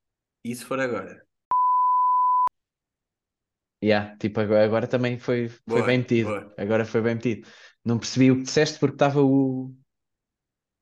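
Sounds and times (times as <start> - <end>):
speech: 0.4 - 1.3, 3.8 - 9.8
censor bleep, pure high-pitched tone: 1.5 - 2.5.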